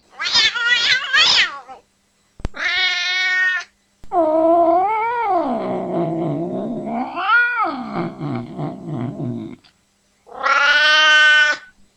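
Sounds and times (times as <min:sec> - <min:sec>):
scared, angry cat yowling and caterwauling: 0:00.2 - 0:01.8, 0:02.6 - 0:09.6, 0:10.3 - 0:11.8.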